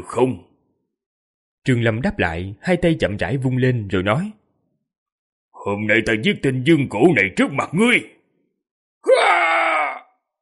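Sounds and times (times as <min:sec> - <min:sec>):
speech: 0:00.0 - 0:00.5, 0:01.6 - 0:04.4, 0:05.6 - 0:08.2
wounded man screaming loudly: 0:09.0 - 0:10.2.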